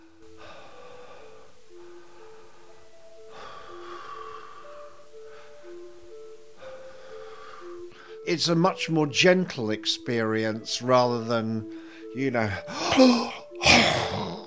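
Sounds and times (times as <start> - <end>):
repetitive continuous half breaths in a breathing exercise: 0.0 - 8.3, 11.6 - 14.4
speech: 8.3 - 13.8.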